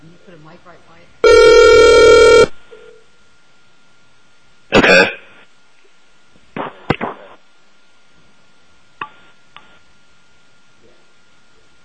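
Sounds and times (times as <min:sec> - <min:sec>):
speech: 0:00.1 - 0:03.1
telephone ringing: 0:01.2 - 0:02.5.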